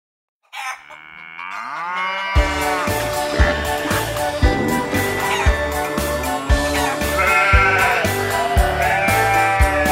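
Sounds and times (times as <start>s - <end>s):
single sheep bleating: 0.5s - 6.0s, 6.6s - 9.9s
upbeat children's music with a steady thumping beat: 2.4s - 9.9s.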